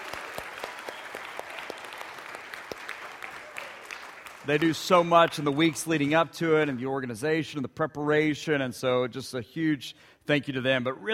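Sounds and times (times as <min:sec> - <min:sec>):
crowd clapping at a Vacation Bible School gathering: 0:00.0 - 0:06.9
speech: 0:04.5 - 0:11.1.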